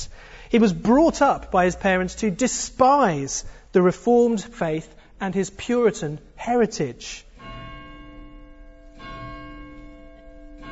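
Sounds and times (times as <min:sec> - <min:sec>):
speech: 0:00.5 - 0:07.3
bell ringing: 0:07.3 - 0:10.7.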